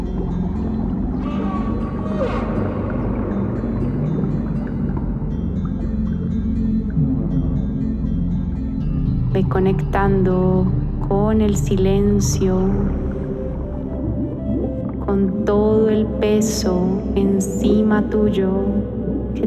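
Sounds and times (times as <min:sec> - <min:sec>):
faint whale-like calls and tonal cries: 0:00.0 - 0:08.8, 0:12.4 - 0:19.4
deep underwater ocean low rumble: 0:00.0 - 0:19.4
speech: 0:09.4 - 0:13.0, 0:15.1 - 0:19.4.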